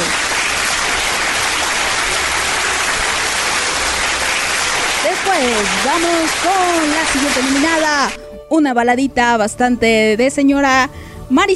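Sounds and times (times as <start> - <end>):
crowd applause: 0.0 - 8.2
speech: 5.4 - 11.5.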